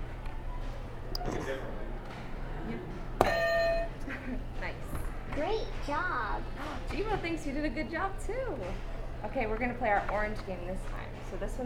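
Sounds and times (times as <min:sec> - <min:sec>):
soft murmur: 0:00.0 - 0:11.6
speech: 0:01.5 - 0:01.8, 0:04.3 - 0:11.6
electronic game buzzer being pressed: 0:03.2 - 0:04.0.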